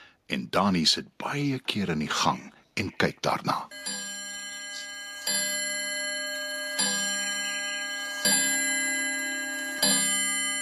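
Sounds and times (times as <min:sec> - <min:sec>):
speech: 0:00.3 - 0:04.0
grandfather clock striking the hour with deep resonant chimes: 0:03.7 - 0:10.6.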